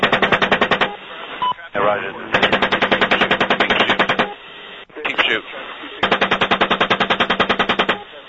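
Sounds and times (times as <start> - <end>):
automatic gunfire in recorded combat video audio: 0.0 - 1.0, 2.4 - 4.3, 6.0 - 8.0
brief radio-style talk: 0.0 - 6.6, 7.4 - 8.2
speech: 1.9 - 2.5, 5.3 - 5.6.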